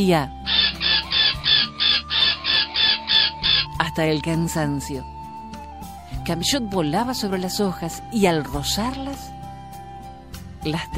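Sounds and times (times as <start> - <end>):
speech: 0.0 - 0.6, 4.0 - 5.1, 6.3 - 9.3, 10.6 - 10.9
bird calling from the trees with shrill clucking notes: 0.4 - 3.9.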